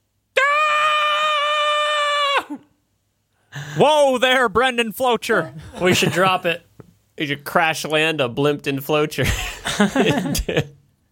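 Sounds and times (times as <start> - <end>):
woman screaming in fright: 0.4 - 2.7
breathy gasp: 3.4 - 3.8
speech: 3.8 - 10.8
laughter: 5.3 - 6.6, 9.2 - 10.8.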